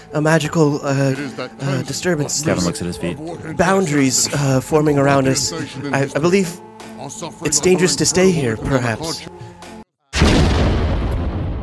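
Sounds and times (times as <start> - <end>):
laughter: 0.0 - 9.8
speech: 0.1 - 9.4
loud distant explosion with rumbling roar: 10.2 - 11.6.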